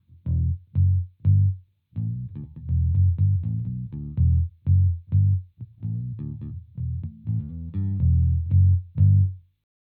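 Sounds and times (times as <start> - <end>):
Fender bass guitar played with a pick: 0.0 - 9.4.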